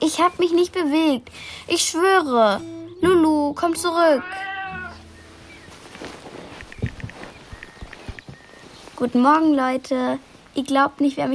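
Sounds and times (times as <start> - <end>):
speech: 0.0 - 4.5, 9.0 - 11.3
cat meowing: 4.1 - 5.1
shuffling movement: 5.0 - 11.2
soft thumps: 5.6 - 8.7.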